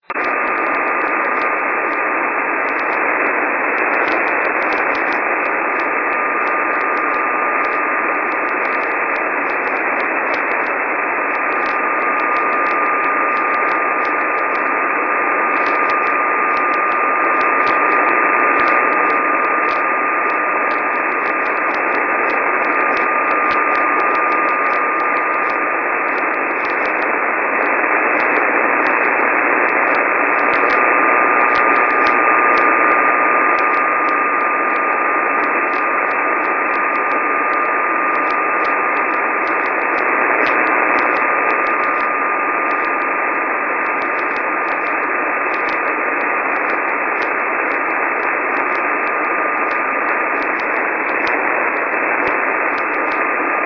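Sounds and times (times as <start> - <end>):
48.250.20 MHz video carrier on 6 meter band: 0.0 - 53.6.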